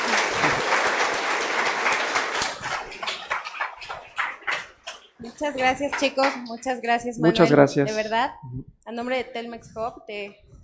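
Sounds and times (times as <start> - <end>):
audience applause at a talk: 0.0 - 6.4
speech: 5.4 - 10.4.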